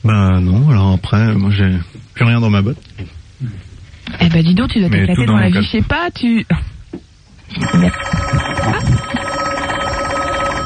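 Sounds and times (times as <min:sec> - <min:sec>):
speech: 0:00.0 - 0:09.2
telephone ringing on a direct line: 0:07.5 - 0:10.6.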